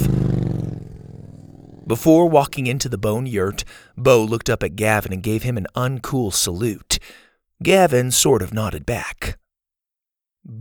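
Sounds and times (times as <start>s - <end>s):
motorbike engine revving and pulling away: 0.0s - 3.3s
speech: 1.9s - 9.4s.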